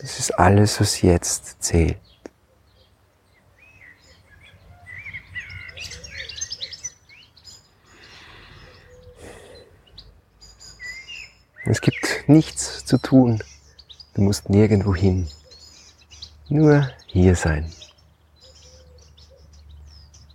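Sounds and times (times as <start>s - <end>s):
speech: 0.0s - 2.1s, 11.6s - 13.5s, 14.2s - 15.4s, 16.5s - 17.8s
several birds singing and chirping outdoors in nature: 0.0s - 20.3s.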